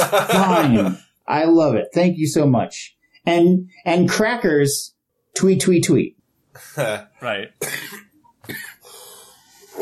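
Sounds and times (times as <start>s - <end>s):
laughter: 0.0s - 1.0s
speech: 0.0s - 8.8s
person coughing: 7.6s - 9.0s.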